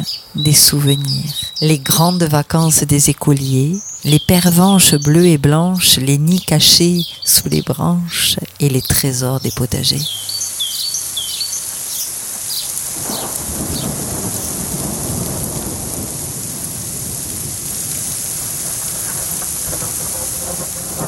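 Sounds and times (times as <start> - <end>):
speech: 0.0 - 10.3
birds chirping faintly: 0.0 - 21.0
hail pelting down on roofs in a thunderstorm: 10.5 - 21.0
deep roll of thunder: 12.8 - 21.0.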